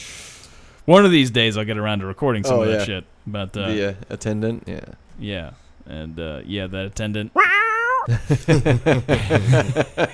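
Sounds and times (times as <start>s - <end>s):
speech: 0.8s - 10.1s
cat meowing: 7.3s - 8.1s
chuckling laughter: 8.0s - 10.1s.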